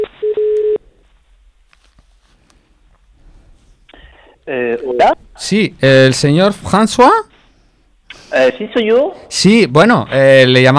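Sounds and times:
steady telephone tone: 0:00.0 - 0:01.0
speech: 0:04.5 - 0:07.3, 0:08.3 - 0:10.7.

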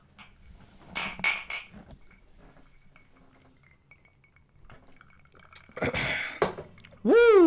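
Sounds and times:
glasses clinking in a toast: 0:00.0 - 0:06.8
faint liquid sounds: 0:01.7 - 0:07.4.

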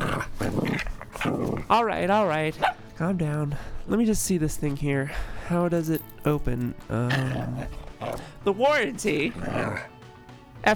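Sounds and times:
dog growling and snarling: 0:00.0 - 0:01.8, 0:07.0 - 0:08.4, 0:09.1 - 0:10.0
speech: 0:01.7 - 0:09.9.

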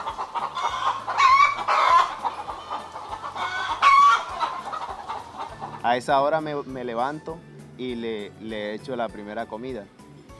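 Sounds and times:
flock of laying hens clucking and chattering: 0:00.0 - 0:06.3
speech: 0:05.9 - 0:10.0.

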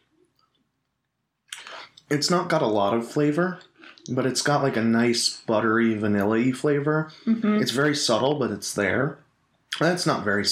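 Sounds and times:
person chewing a crisp cookie: 0:01.5 - 0:02.0, 0:03.6 - 0:04.1
speech: 0:02.1 - 0:10.4.

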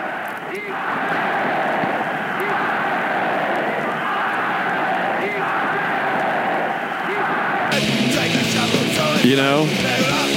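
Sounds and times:
hoarse shouted vocals: 0:00.0 - 0:10.3
speech: 0:00.6 - 0:01.1, 0:09.3 - 0:10.2
distorted guitars: 0:07.7 - 0:10.3
raw lo-fi punk rock song: 0:07.7 - 0:10.3.

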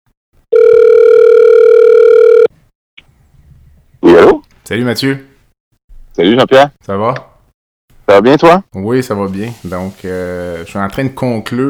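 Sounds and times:
steady electronic ring tone of an outgoing phone call: 0:00.5 - 0:02.5
speech: 0:04.2 - 0:05.3, 0:06.2 - 0:07.3, 0:08.1 - 0:11.6.

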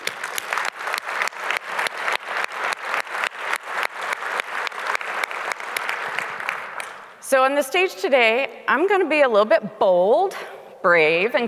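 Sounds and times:
audience applauding: 0:00.0 - 0:07.2
speech: 0:07.3 - 0:11.4.

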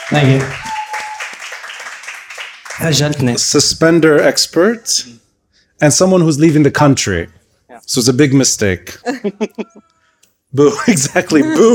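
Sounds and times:
live audience applauding: 0:00.0 - 0:03.4
speech: 0:00.1 - 0:00.6, 0:02.8 - 0:05.2, 0:05.8 - 0:09.9, 0:10.5 - 0:11.7.

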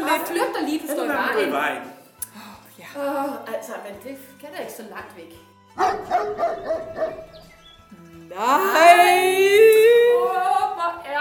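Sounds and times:
speech: 0:00.2 - 0:02.0, 0:02.8 - 0:11.1
dog barking in sharp yaps: 0:05.8 - 0:07.3.

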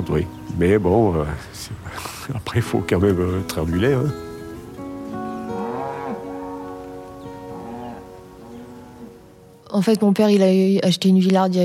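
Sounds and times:
speech: 0:00.0 - 0:04.3, 0:09.7 - 0:11.6
cow mooing in long drawn-out calls: 0:05.1 - 0:09.4.

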